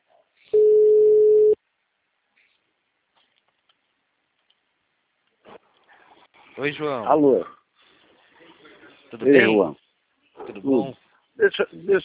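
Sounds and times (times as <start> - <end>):
telephone tone while placing a call: 0.5 - 1.6
speech: 6.6 - 7.6, 9.1 - 9.8, 10.5 - 12.0.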